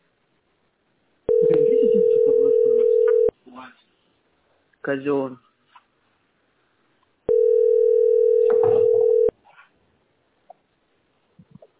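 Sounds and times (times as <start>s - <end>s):
speech: 1.3s - 2.8s, 3.5s - 3.9s, 4.8s - 5.4s
telephone dial tone: 1.3s - 3.3s, 7.3s - 9.3s.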